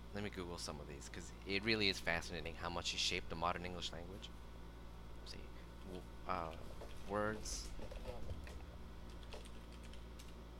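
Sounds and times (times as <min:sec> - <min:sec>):
low steady hum: 0:00.0 - 0:10.5
speech: 0:00.2 - 0:04.5, 0:05.3 - 0:08.6
typing on a computer keyboard: 0:08.0 - 0:10.4.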